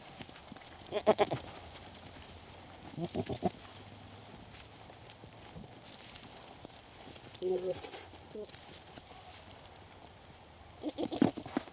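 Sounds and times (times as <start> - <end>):
goat bleating: 0.9 - 1.5, 2.9 - 3.6, 10.8 - 11.5
speech: 1.0 - 1.5.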